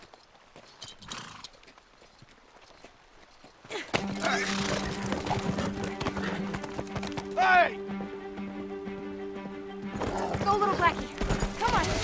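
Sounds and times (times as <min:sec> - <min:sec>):
horse hooves clopping while crossing a river: 0:00.0 - 0:07.5, 0:09.9 - 0:12.0
horse whinny: 0:04.2 - 0:05.0.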